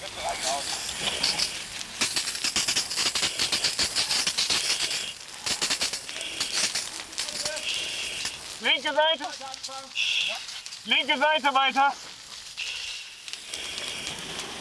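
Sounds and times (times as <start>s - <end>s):
fire hose water spraying onto a burning fire: 0.0s - 14.5s
speech: 8.8s - 12.0s.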